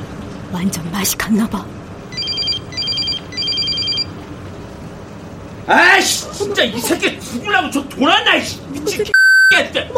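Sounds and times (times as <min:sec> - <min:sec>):
low rumble: 0:00.0 - 0:09.1
speech: 0:00.5 - 0:01.8, 0:05.7 - 0:09.9
electronic phone ringing with warbling trills: 0:02.1 - 0:04.1.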